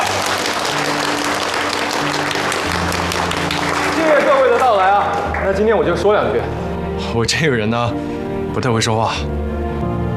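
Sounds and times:
wedding guests applauding: 0:00.0 - 0:06.1
speech: 0:05.5 - 0:09.4.

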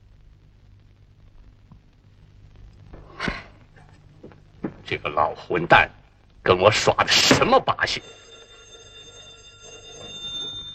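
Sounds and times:
low hum: 0:00.0 - 0:10.7
speech: 0:04.9 - 0:08.2
telephone ringing with a high metallic trill: 0:07.8 - 0:10.7.

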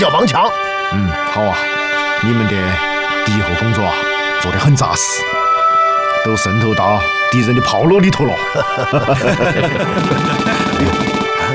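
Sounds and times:
speech: 0:00.0 - 0:05.6, 0:06.2 - 0:11.5
laughter: 0:08.3 - 0:11.5
rapid continuous bursts of gunfire: 0:10.0 - 0:11.5.

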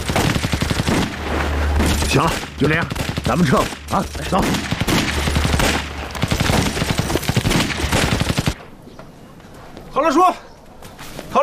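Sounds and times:
rapid gunfire from a few guns shot off for fun: 0:00.0 - 0:08.6
speech: 0:02.1 - 0:04.8, 0:10.0 - 0:10.5.

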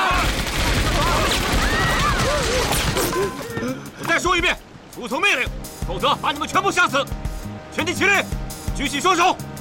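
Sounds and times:
gunfire aboard a ship: 0:00.1 - 0:03.3
speech: 0:05.1 - 0:07.3, 0:07.8 - 0:09.5.

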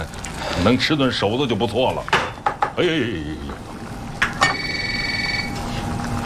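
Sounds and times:
continuous low hum: 0:00.0 - 0:06.2
speech: 0:00.6 - 0:02.2, 0:02.8 - 0:03.6
telephone ringing with a steady electronic trill: 0:04.4 - 0:05.6.

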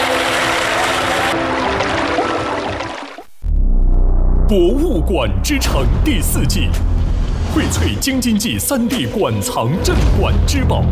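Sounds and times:
water gushing into a flooding car interior: 0:00.0 - 0:03.2
low rumble: 0:03.4 - 0:08.4
speech: 0:04.5 - 0:06.9, 0:07.6 - 0:10.9.

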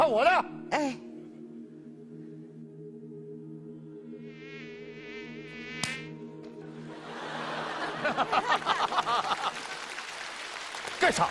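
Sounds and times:
speech: 0:00.0 - 0:01.1
mosquito buzzing: 0:04.1 - 0:06.3
laughter: 0:06.6 - 0:10.0.

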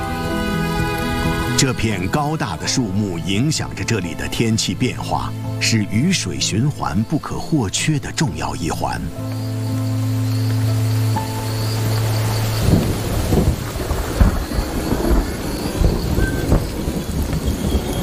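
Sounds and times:
steady rainfall: 0:00.0 - 0:18.0
speech: 0:01.6 - 0:09.5
deep rolling thunder: 0:11.9 - 0:18.0.

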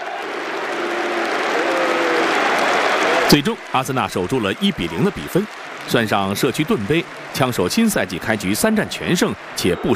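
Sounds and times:
football fans applauding in a stadium: 0:00.0 - 0:09.9
speech: 0:03.3 - 0:09.9.

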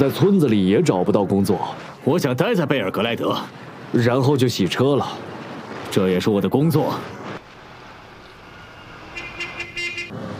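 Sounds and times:
speech: 0:00.0 - 0:05.3, 0:05.9 - 0:07.2
car horn honking in short insistent blasts: 0:08.8 - 0:10.2.

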